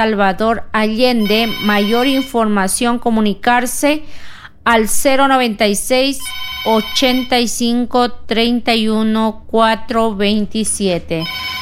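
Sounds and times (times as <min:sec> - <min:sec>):
speech: 0:00.0 - 0:11.5
telephone ringing with a bright electronic ringtone: 0:01.2 - 0:02.4, 0:06.2 - 0:07.4, 0:11.2 - 0:11.5.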